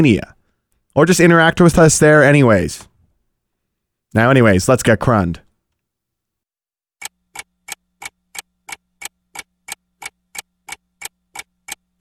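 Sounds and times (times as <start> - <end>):
speech: 0.0 - 0.4, 1.0 - 2.9, 4.1 - 5.4
clock ticking: 7.0 - 11.9.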